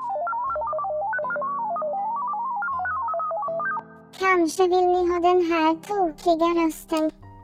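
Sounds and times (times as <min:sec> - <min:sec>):
bright electronic beeps in a tune-like pattern: 0:00.0 - 0:04.0
speech: 0:04.2 - 0:07.2.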